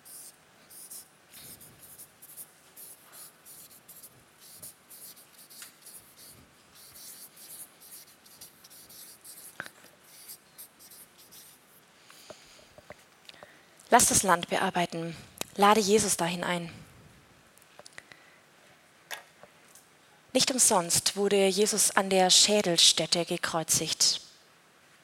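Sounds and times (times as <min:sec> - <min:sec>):
pen scratching across paper writing by hand: 0:00.0 - 0:11.6
speech: 0:13.9 - 0:16.8, 0:20.5 - 0:24.2.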